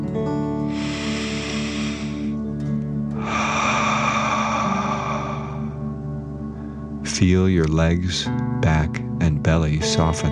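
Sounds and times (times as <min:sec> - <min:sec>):
soft steady musical drone: 0:00.0 - 0:10.2
deep breath in through nose and out through mouth in a relaxation exercise: 0:00.6 - 0:07.0
speech: 0:07.2 - 0:10.2.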